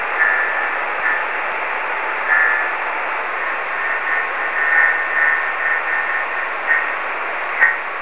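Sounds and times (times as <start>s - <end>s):
high speed CW morse code via meteor scatter: 0.2s - 1.3s, 2.1s - 2.9s, 3.5s - 7.9s.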